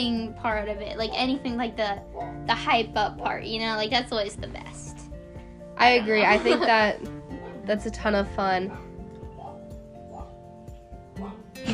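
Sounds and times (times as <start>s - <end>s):
speech: 0.0s - 4.9s, 5.8s - 8.8s
female black Labrador dog barking: 2.1s - 2.4s, 8.7s - 10.4s.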